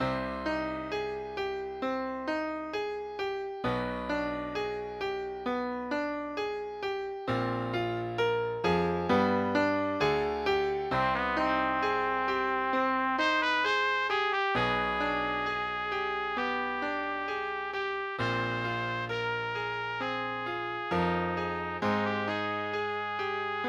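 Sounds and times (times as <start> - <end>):
piano accompanying trumpet: 0.0 - 23.6
trumpet playing a meditation piece: 10.9 - 23.6.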